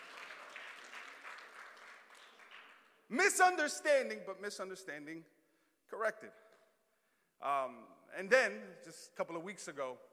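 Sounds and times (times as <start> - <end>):
crowd applauding: 0.0 - 3.0
speech: 3.1 - 5.4, 6.0 - 6.4, 7.4 - 10.1.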